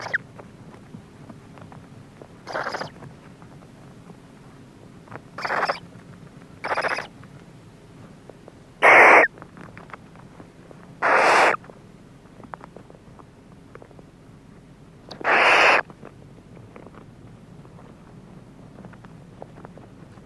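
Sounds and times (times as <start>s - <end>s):
barn owl screeching: 0.0s - 0.2s, 2.5s - 2.9s, 5.4s - 5.8s, 6.6s - 7.1s, 8.8s - 9.3s, 11.0s - 11.6s, 15.1s - 15.8s.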